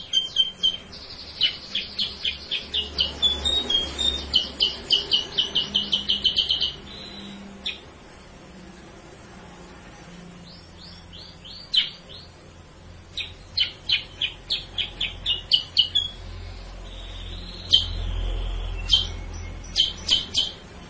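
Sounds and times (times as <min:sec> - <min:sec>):
Sooty-headed bulbul lure song of chirps and short whistles: 0:00.0 - 0:07.8, 0:10.4 - 0:12.3, 0:13.1 - 0:20.7.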